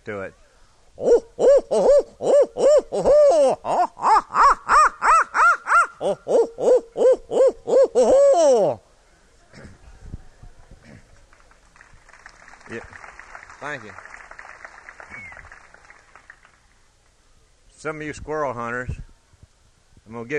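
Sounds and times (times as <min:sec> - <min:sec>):
speech: 0:00.0 - 0:00.4, 0:01.0 - 0:04.4, 0:06.0 - 0:07.0, 0:13.6 - 0:14.1, 0:17.8 - 0:19.0, 0:20.1 - 0:20.3
faint noise: 0:00.0 - 0:20.3
person imitating owl hoots: 0:01.0 - 0:08.8.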